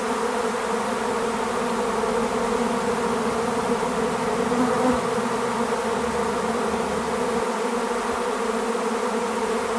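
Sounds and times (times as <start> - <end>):
swarm of honey bees buzzing: 0.0 - 9.7.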